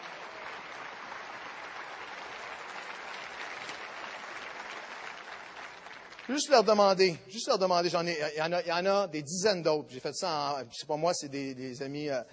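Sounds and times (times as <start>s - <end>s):
applause from a large audience: 0.0s - 7.1s
speech: 6.3s - 12.3s.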